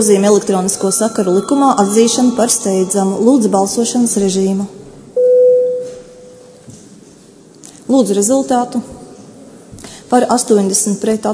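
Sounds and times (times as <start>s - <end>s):
speech: 0.0s - 4.8s, 7.9s - 9.0s, 10.1s - 11.3s
parliament chamber bell signalling a vote: 0.4s - 4.0s, 5.2s - 6.6s.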